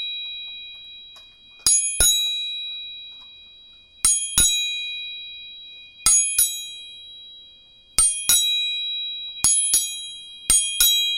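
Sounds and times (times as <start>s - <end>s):
bright high ringing tones of tuning forks: 0.0s - 11.1s
tuning forks struck with sharp metallic taps: 1.1s - 5.1s, 6.0s - 7.1s, 8.0s - 11.1s.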